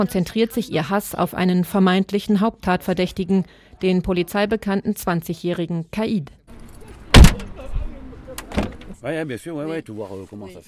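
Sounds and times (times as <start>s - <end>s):
speech: 0.0s - 6.4s, 9.0s - 10.6s
black taxi van door thudding shut in La Monnaie: 7.1s - 7.6s, 8.5s - 9.0s
heavy thump: 7.1s - 7.6s.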